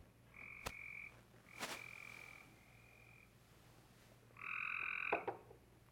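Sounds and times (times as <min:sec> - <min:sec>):
Cope's gray treefrog giving fast-pulsed buzzy trills: 0:00.3 - 0:03.4, 0:04.3 - 0:05.3.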